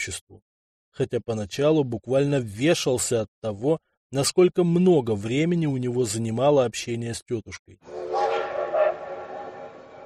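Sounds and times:
speech: 0:00.0 - 0:08.0
faint rail noise: 0:07.9 - 0:10.0
steam locomotive whistle: 0:07.9 - 0:10.0.

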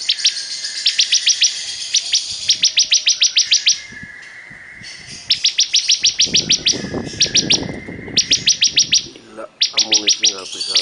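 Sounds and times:
thin steady whistle: 0:00.0 - 0:10.3
bar-winged prinia singing vigorously with rapid high chips: 0:00.0 - 0:10.8.

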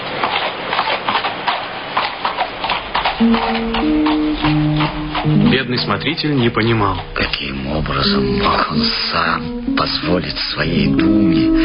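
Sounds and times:
horses galloping pulling a kibitka wagon: 0:00.0 - 0:11.6
steady tonal notes: 0:03.1 - 0:11.6
speech: 0:03.2 - 0:11.6.

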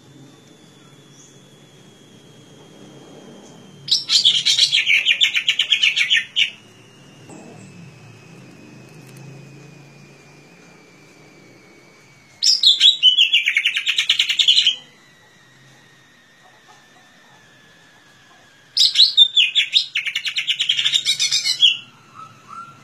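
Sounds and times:
thin steady tone: 0:00.0 - 0:22.8
leafbird singing chirping warbled notes: 0:00.6 - 0:02.2, 0:03.4 - 0:06.7, 0:12.4 - 0:14.9, 0:18.8 - 0:22.8.

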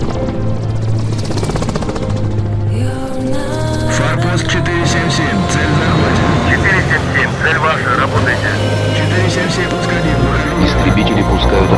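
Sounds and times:
helicopter rotor chopping while flying up into the sky: 0:00.0 - 0:11.7.

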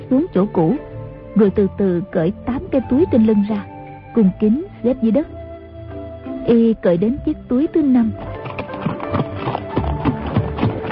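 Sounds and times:
speech: 0:00.1 - 0:05.4, 0:06.4 - 0:08.3
horse hooves galloping: 0:07.7 - 0:10.9.

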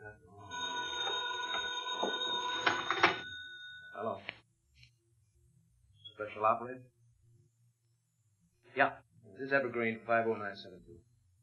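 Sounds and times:
pay phone in a booth ringing with a metallic bell tone at night: 0:00.4 - 0:04.2
speech: 0:06.4 - 0:07.0, 0:08.8 - 0:11.1.

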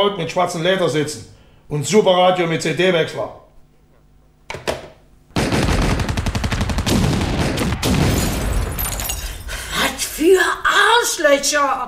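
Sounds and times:
speech: 0:00.0 - 0:03.4, 0:10.3 - 0:11.8
automatic gunfire shooting at a building: 0:05.3 - 0:09.5.

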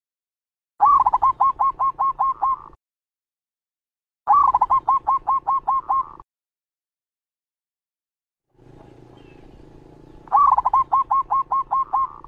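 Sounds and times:
Zebra dove song of rapid rolling notes: 0:00.8 - 0:02.8, 0:04.3 - 0:06.2, 0:08.6 - 0:12.2.

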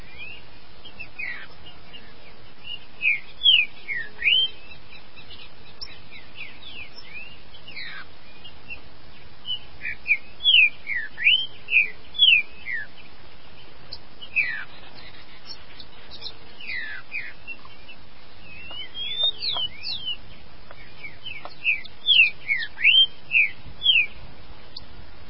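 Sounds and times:
green-winged saltator song: 0:00.0 - 0:08.8, 0:09.4 - 0:13.1, 0:13.9 - 0:24.9.

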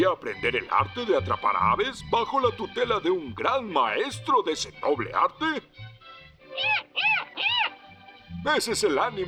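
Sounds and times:
speech: 0:00.0 - 0:06.0, 0:06.6 - 0:07.1, 0:08.4 - 0:09.2
cartoon kitten meowing: 0:06.6 - 0:07.8.

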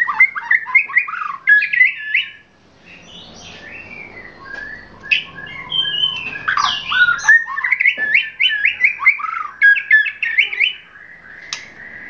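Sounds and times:
Oriental magpie-robin song: 0:00.0 - 0:12.0.

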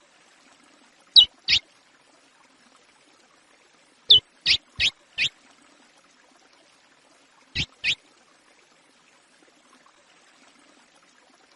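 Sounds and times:
chestnut-bellied seed finch singing Praia style song: 0:01.2 - 0:01.6, 0:04.1 - 0:05.3, 0:07.6 - 0:08.0.

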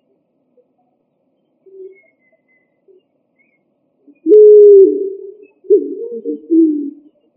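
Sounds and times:
pigeon coo: 0:04.2 - 0:07.1.

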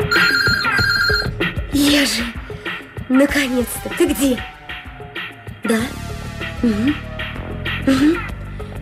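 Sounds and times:
mobile phone ringing with a loud electronic ringtone: 0:00.1 - 0:01.5
speech: 0:01.8 - 0:02.4, 0:03.1 - 0:04.5, 0:05.7 - 0:06.0, 0:06.6 - 0:07.1, 0:07.9 - 0:08.3.

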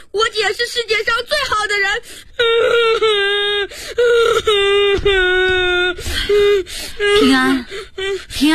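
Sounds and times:
speech: 0:00.4 - 0:01.3
child crying: 0:01.9 - 0:08.4.

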